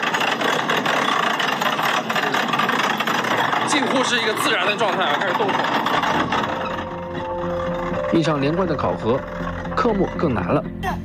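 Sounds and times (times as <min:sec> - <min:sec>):
engine of a heavy multi-ton vehicle with throttle pressed gently: 0:00.0 - 0:11.0
speech: 0:03.8 - 0:06.6, 0:08.1 - 0:11.0.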